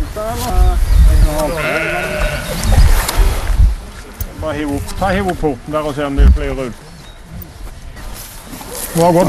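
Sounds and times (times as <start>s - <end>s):
speech: 0.2s - 2.8s, 4.4s - 6.8s, 9.0s - 9.2s
several sheep bleating: 1.4s - 2.6s.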